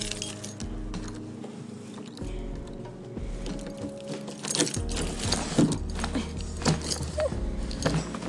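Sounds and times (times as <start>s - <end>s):
keys jangling while unlocking front door of a house: 0.0s - 1.2s, 3.4s - 8.2s.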